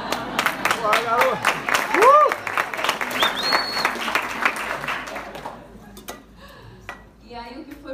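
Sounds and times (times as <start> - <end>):
audience clapping: 0.0 - 5.7
speech: 1.0 - 1.6
whistle: 3.2 - 4.0.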